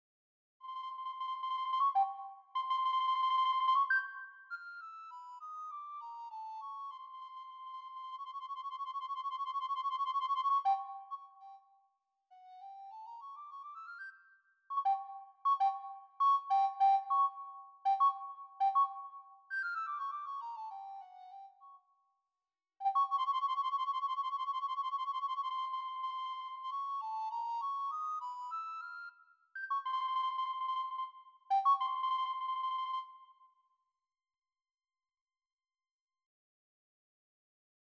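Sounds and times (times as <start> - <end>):
nostalgic recorder, flugelhorn or cornet solo: 0.6 - 11.6, 12.6 - 14.1, 14.7 - 21.7, 22.8 - 33.4.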